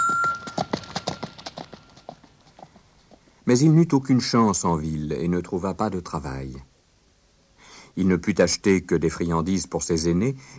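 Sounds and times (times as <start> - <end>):
galloping horse's hooves: 0.0 - 3.3
speech: 3.5 - 6.7, 8.0 - 10.5.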